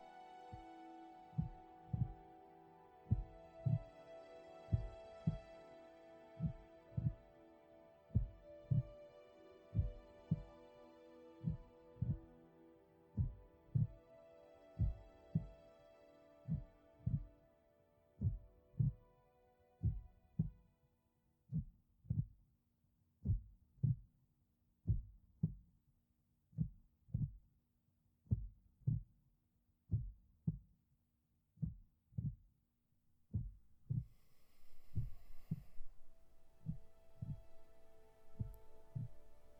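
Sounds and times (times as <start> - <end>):
soft sustained tonal drone: 0.0 - 16.9, 34.1 - 39.5
slow heartbeat: 1.4 - 2.2, 3.1 - 3.9, 4.7 - 5.5, 6.4 - 7.3, 8.1 - 9.0, 9.7 - 10.6, 11.4 - 12.4, 13.2 - 14.0, 14.8 - 15.6, 16.5 - 17.4, 18.2 - 19.0, 19.8 - 20.6, 21.5 - 22.4, 23.2 - 24.1, 24.9 - 25.7, 26.6 - 27.4, 28.3 - 29.2, 29.9 - 30.7, 31.6 - 32.4, 33.3 - 39.5.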